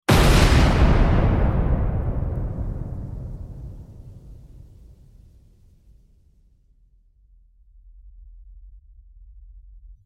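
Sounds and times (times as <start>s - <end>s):
grenade explosion: 0.0s - 6.2s.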